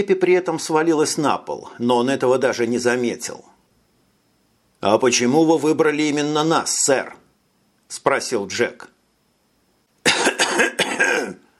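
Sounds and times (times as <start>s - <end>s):
speech: 0.0s - 3.6s, 4.8s - 7.2s, 7.9s - 8.9s
colonel clearing his throat: 10.0s - 11.5s.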